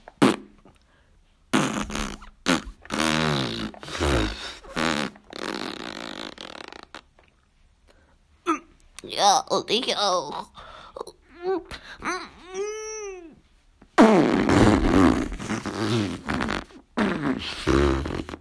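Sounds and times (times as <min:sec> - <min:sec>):
sputtering fart noises: 0:00.0 - 0:00.7, 0:01.5 - 0:07.3, 0:14.0 - 0:18.3
speech: 0:09.1 - 0:10.5.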